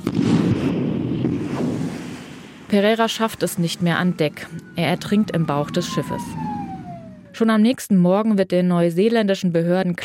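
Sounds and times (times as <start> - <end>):
magnetic mine explosion on a ship's hull in a harbour: 0.0 - 2.8
speech: 2.7 - 6.5, 7.4 - 10.0.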